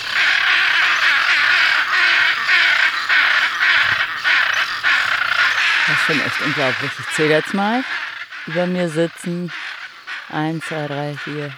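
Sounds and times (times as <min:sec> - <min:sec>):
several macaws screeching in harsh raspy calls: 0:00.0 - 0:11.5
speech: 0:06.1 - 0:09.7, 0:10.3 - 0:11.5.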